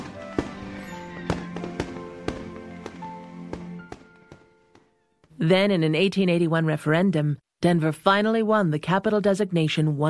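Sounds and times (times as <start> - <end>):
fireworks exploding at an Independence Day fireworks show in Colorado: 0.0 - 5.0
speech: 5.4 - 10.0.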